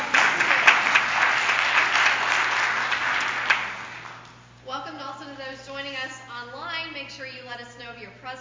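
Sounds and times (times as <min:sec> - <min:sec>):
audience applauding a choir: 0:00.0 - 0:04.2.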